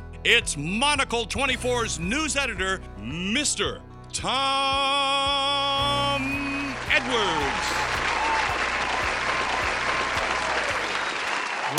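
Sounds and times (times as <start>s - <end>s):
speech: 0.2s - 7.9s
sizable audience clapping: 6.5s - 11.7s.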